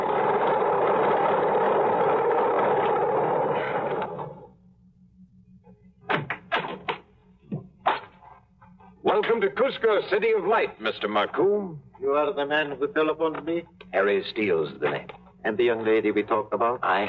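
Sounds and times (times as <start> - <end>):
single-engine airplane taxiing at an airport: 0.0 - 17.0
sharp knocks and clatters: 6.1 - 8.2
speech: 9.2 - 17.0.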